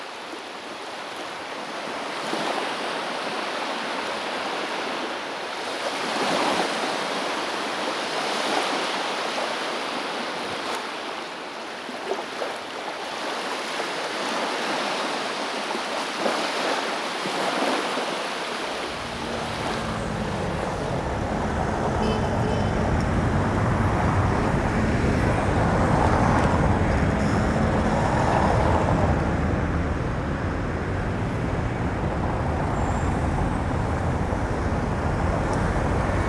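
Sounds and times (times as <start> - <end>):
sea waves washing with slow swells: 0.0 - 36.2
low rumble: 18.9 - 36.2.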